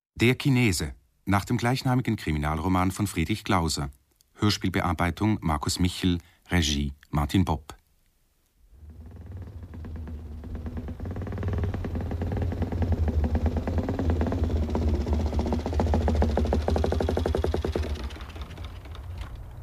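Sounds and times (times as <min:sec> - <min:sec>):
speech: 0:00.2 - 0:07.8
motorcycle engine running in a radio drama: 0:08.8 - 0:19.6.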